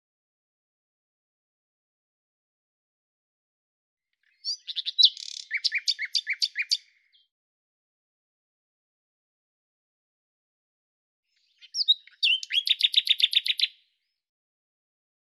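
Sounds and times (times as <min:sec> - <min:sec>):
common nightingale singing: 0:04.2 - 0:07.3, 0:11.3 - 0:14.2.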